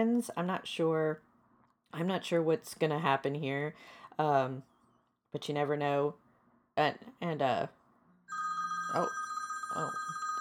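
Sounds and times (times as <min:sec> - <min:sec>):
speech: 0:00.0 - 0:01.3, 0:01.9 - 0:04.7, 0:05.3 - 0:06.2, 0:06.8 - 0:10.1
telephone ringing with electronic trill: 0:08.3 - 0:10.3.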